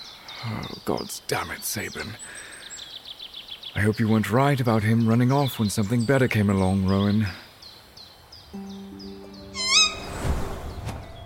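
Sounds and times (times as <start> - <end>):
speech: 0.4 - 2.5, 3.8 - 7.4
breathy rush of wind: 9.1 - 11.2
quick high chirps: 9.3 - 10.4
owl screech: 9.6 - 10.4.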